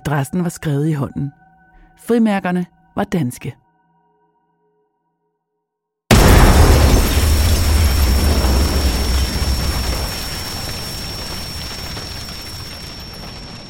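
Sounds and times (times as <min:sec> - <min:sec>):
speech: 0:00.0 - 0:01.4, 0:02.0 - 0:03.6
letter bomb explosion with deep rumbling roar: 0:06.1 - 0:13.6.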